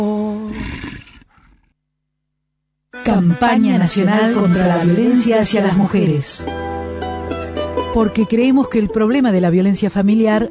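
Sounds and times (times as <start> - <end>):
wolf growl: 0.4 - 1.7
speech: 3.1 - 6.6, 7.9 - 10.5.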